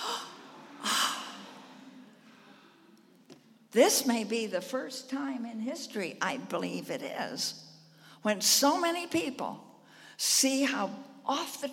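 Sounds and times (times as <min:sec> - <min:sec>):
people gasping: 0:00.0 - 0:03.0
speech: 0:03.7 - 0:07.6, 0:08.2 - 0:11.7.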